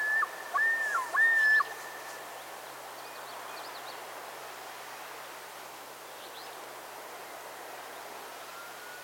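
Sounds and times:
Common Loon Gavia immer giving whistled notes: 0:00.0 - 0:01.7.

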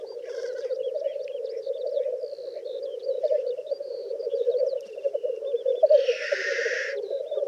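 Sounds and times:
black grouse Tetrao tetrix bubbling coos: 0:00.0 - 0:07.4
faint high chirps: 0:05.8 - 0:07.0
harsh hiss: 0:06.0 - 0:07.0.

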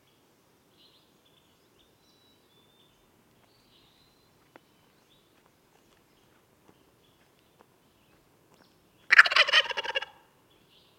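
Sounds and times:
wild turkey Meleagris gallopavo gobbling: 0:09.1 - 0:10.2.

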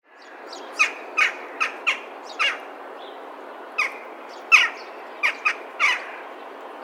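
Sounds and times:
Western jackdaw Corvus monedula metallic kya calls: 0:00.7 - 0:02.7, 0:03.8 - 0:06.3.

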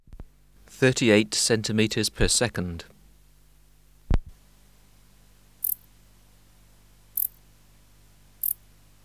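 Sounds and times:
speech: 0:00.8 - 0:03.0
wart-biter bush cricket Decticus verrucivorus high ticks: 0:05.6 - 0:05.9, 0:07.1 - 0:07.5, 0:08.4 - 0:08.6.

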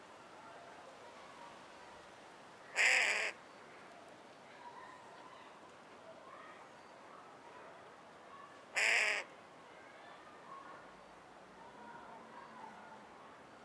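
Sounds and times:
carrion crow Corvus corone giving loud rasping caws: 0:02.8 - 0:03.4, 0:08.8 - 0:09.3.

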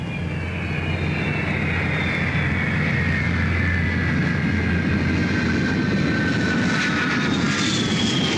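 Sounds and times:
high descending whine of landing aircraft: 0:00.0 - 0:06.1
airplane engines roaring while landing on runway: 0:00.0 - 0:08.3.

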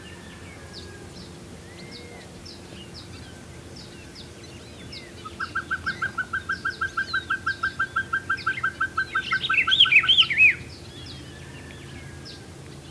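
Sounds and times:
other birds twittering and chattering: 0:00.0 - 0:12.8
Pacific pygmy owl Glaucidium peruanum tooting: 0:05.0 - 0:12.2.

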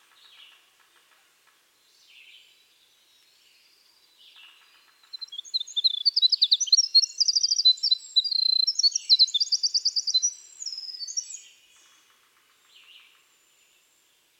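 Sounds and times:
Troglodytes hiemalis winter wren singing: 0:04.3 - 0:11.6.

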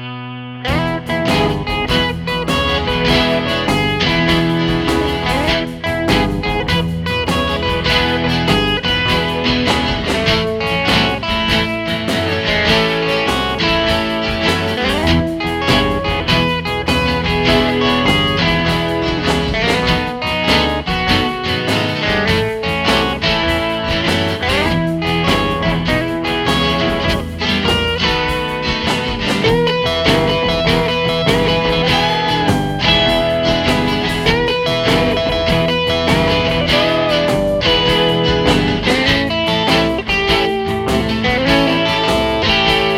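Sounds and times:
acoustic shuffle music: 0:00.6 - 0:42.9.

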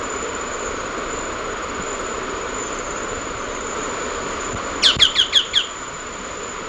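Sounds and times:
high background hiss: 0:00.0 - 0:06.6
Choco tapaculo Scytalopus chocoensis call: 0:04.8 - 0:05.7.

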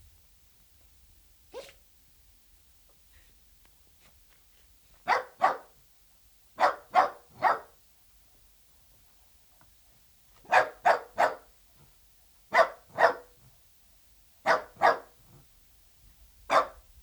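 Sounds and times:
dachshund barking: 0:01.5 - 0:01.8, 0:05.0 - 0:05.8, 0:06.6 - 0:07.8, 0:10.4 - 0:11.5, 0:12.5 - 0:13.4, 0:14.4 - 0:15.2, 0:16.5 - 0:16.8.

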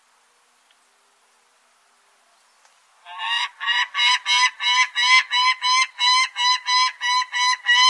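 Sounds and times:
Peregrine falcon grating kak calls: 0:03.1 - 0:07.8.

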